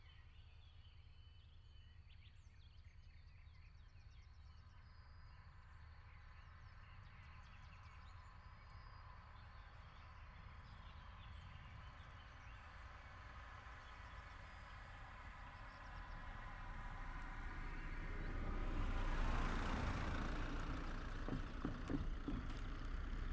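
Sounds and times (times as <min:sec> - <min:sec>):
car traffic at a railway crossing: 0:17.0 - 0:23.3.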